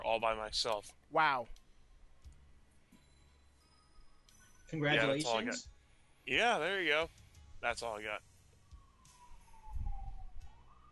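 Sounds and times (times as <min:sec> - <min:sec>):
speech: 0:00.1 - 0:01.6, 0:04.7 - 0:05.7, 0:06.3 - 0:08.3
emergency siren wailing outside in Crown Heights: 0:07.8 - 0:10.8.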